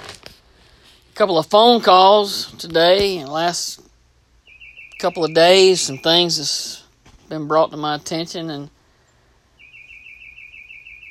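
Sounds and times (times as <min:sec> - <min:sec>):
speech: 0:01.2 - 0:03.9, 0:05.0 - 0:08.8
bird singing a warbling phrase: 0:04.4 - 0:06.8, 0:07.8 - 0:11.0.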